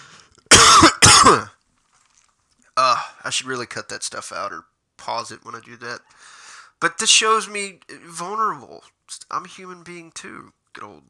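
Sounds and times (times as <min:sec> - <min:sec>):
loud coughs: 0:00.5 - 0:01.5
speech: 0:01.3 - 0:01.5, 0:02.9 - 0:11.0.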